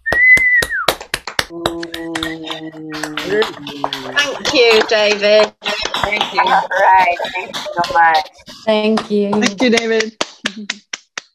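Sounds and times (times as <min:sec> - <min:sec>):
sustained whistle: 0:00.0 - 0:00.9
small group clapping: 0:00.0 - 0:11.3
laughter: 0:01.5 - 0:10.8
speech: 0:01.5 - 0:10.8.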